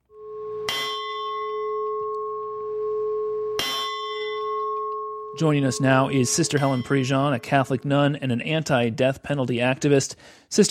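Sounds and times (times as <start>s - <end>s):
large protest bell tolling: 0.1s - 8.5s
speech: 5.4s - 10.6s.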